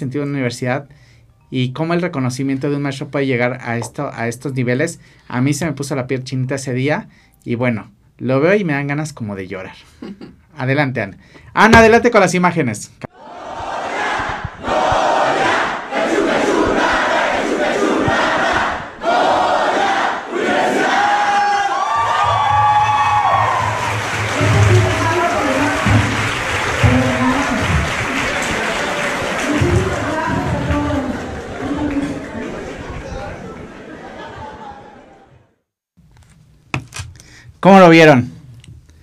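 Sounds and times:
speech: 0:00.0 - 0:13.1, 0:37.6 - 0:38.3
large crowd of students chanting a rhythmic university cheer: 0:13.1 - 0:34.3
unison clapping: 0:21.9 - 0:33.7
laughter: 0:27.8 - 0:35.4.

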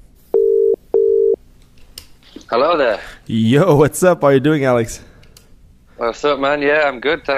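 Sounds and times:
ringback tones from an outgoing phone call: 0:00.4 - 0:01.4
speech: 0:02.5 - 0:05.1, 0:06.0 - 0:07.3.

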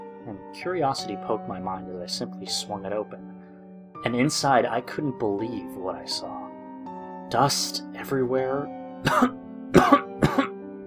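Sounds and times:
speech: 0:00.3 - 0:03.4, 0:04.0 - 0:06.4, 0:07.3 - 0:10.1
short raspy coughs: 0:09.0 - 0:10.6.

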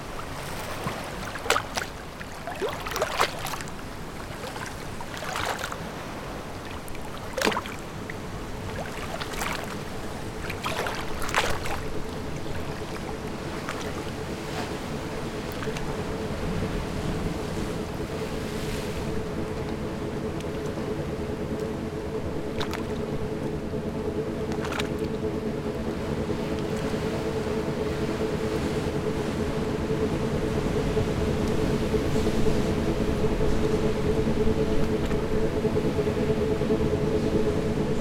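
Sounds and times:
faint whine: 0:00.0 - 0:37.9
sharp knocks and splashes at the seaside: 0:00.2 - 0:05.8, 0:06.6 - 0:07.9, 0:08.8 - 0:09.8, 0:10.4 - 0:11.9.

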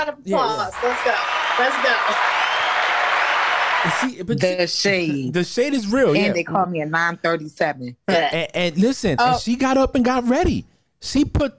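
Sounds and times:
speech: 0:00.0 - 0:02.8, 0:03.8 - 0:11.5
voices and cheers over clapping: 0:00.4 - 0:04.2
round of applause: 0:00.6 - 0:04.1.

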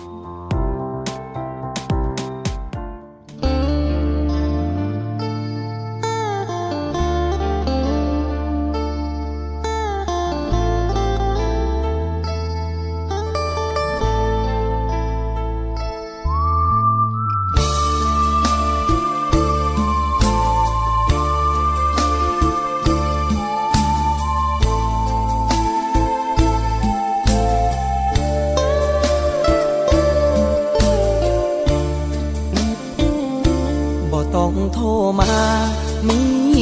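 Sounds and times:
instrumental song opening with deep bass line and layered melodic instruments: 0:00.0 - 0:36.6.

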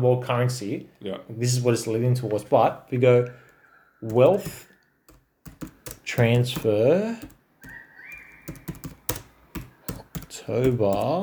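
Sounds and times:
speech: 0:00.0 - 0:03.4, 0:04.0 - 0:04.7, 0:05.6 - 0:07.4, 0:10.4 - 0:11.2
typing on a computer keyboard: 0:04.1 - 0:11.2.

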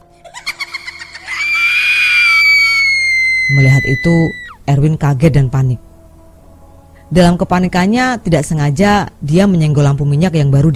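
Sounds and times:
shrill eerie scream-like ghostly female laughter: 0:00.2 - 0:03.5
speech: 0:03.5 - 0:05.9, 0:07.1 - 0:10.7.

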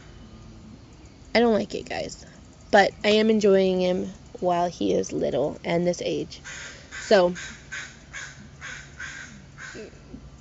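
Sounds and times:
speech: 0:01.4 - 0:07.9
crow cawing in a quiet neighborhood: 0:06.4 - 0:10.0.

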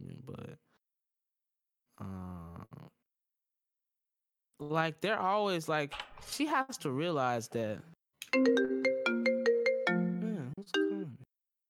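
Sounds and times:
speech: 0:04.6 - 0:08.7
mobile phone ringtone with bright electronic melody: 0:08.4 - 0:11.2.

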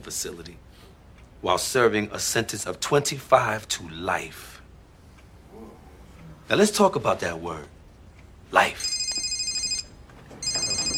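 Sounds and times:
speech: 0:00.0 - 0:04.6, 0:06.5 - 0:07.8, 0:08.5 - 0:08.9
mobile phone ringing with a bright electronic trill: 0:08.8 - 0:10.9.

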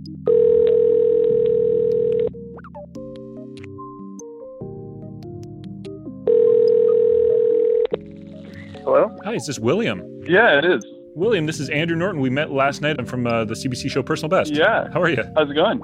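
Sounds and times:
soft music: 0:00.0 - 0:15.8
long steady ringback tones of an outgoing phone call: 0:00.3 - 0:02.4, 0:06.3 - 0:08.0
speech: 0:09.2 - 0:15.8.

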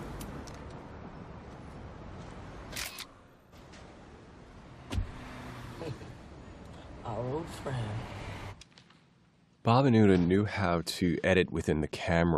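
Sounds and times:
sharp mechanical clicks: 0:02.7 - 0:03.1
car driving away: 0:03.7 - 0:08.6
speech: 0:09.7 - 0:12.3.

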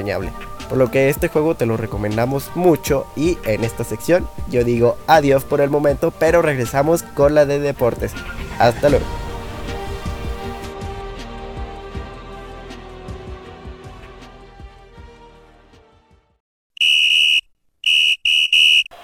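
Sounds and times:
speech: 0:00.0 - 0:09.2
music: 0:00.0 - 0:16.4
shrill referee's whistle for football match kickoff: 0:16.8 - 0:19.0.

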